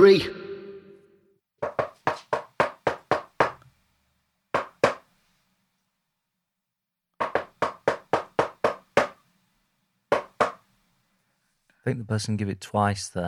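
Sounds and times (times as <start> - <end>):
speech: 0.0 - 0.4, 11.8 - 13.2
knocking on a door: 1.6 - 3.6, 4.6 - 5.0, 7.2 - 9.2, 10.1 - 10.6.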